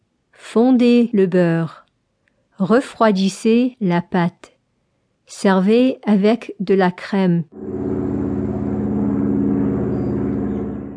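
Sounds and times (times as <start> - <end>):
speech: 0.5 - 1.8, 2.6 - 4.5, 5.3 - 7.9
airplane landing with deep droning roar: 7.6 - 10.9.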